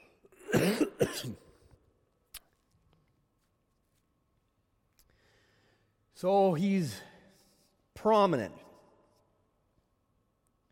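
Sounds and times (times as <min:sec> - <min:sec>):
person clearing throat: 0:00.2 - 0:01.6
speech: 0:00.8 - 0:01.5, 0:06.2 - 0:07.1, 0:08.0 - 0:08.6.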